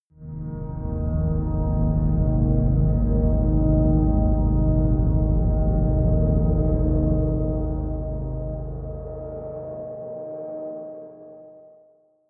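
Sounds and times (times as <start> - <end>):
deep atmospheric drone pad: 0.2 - 10.7.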